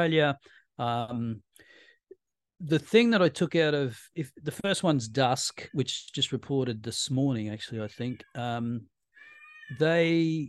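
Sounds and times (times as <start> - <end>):
speech: 0.0 - 1.7, 2.6 - 8.9, 9.7 - 10.4
pet cat meowing: 7.9 - 8.6, 9.2 - 10.1.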